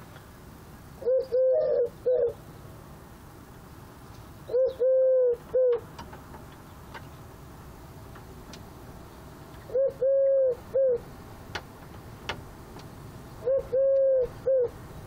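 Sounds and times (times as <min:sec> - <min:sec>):
Eurasian collared dove cooing: 0:01.0 - 0:02.4, 0:04.5 - 0:05.9, 0:09.7 - 0:11.1, 0:13.4 - 0:14.8.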